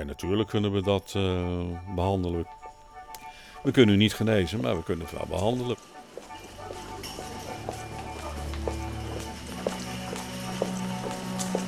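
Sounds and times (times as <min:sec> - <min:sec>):
speech: 0:00.0 - 0:02.6, 0:03.6 - 0:06.0
steady footsteps walking: 0:05.0 - 0:11.6.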